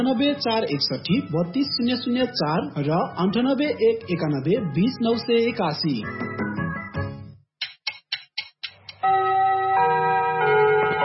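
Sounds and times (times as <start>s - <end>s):
speech: 0.0s - 6.4s
clock striking six in the evening: 9.0s - 11.0s
sustained tonal music: 9.0s - 11.0s.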